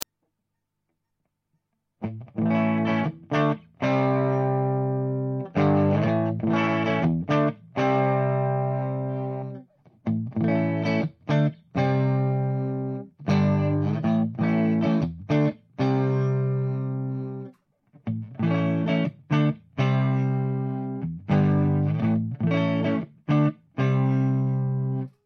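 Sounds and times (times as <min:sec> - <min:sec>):
clean electric guitar: 0:02.0 - 0:25.2.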